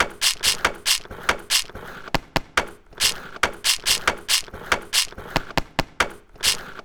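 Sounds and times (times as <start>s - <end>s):
organic percussion loop: 0.0s - 1.9s, 2.6s - 5.4s.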